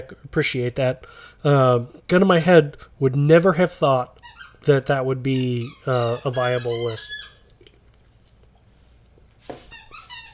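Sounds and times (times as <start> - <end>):
speech: 0.0 - 7.2
dog making shrill whining squeaks: 4.2 - 4.6, 5.3 - 7.5, 9.6 - 10.3.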